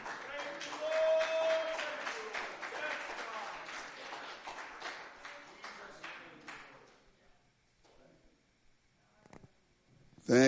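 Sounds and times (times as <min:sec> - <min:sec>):
crowd clapping hands in sustained applause: 0:00.0 - 0:07.0
speech: 0:10.3 - 0:10.4.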